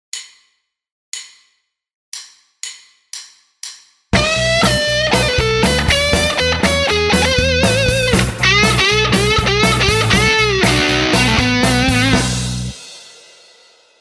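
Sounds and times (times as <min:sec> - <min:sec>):
guitar playing: 0:04.2 - 0:12.8.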